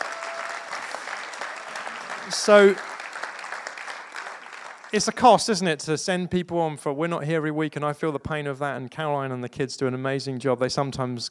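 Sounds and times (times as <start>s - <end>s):
crowd clapping in a roomy space: 0.0s - 5.6s
speech: 2.3s - 2.9s, 4.9s - 11.2s.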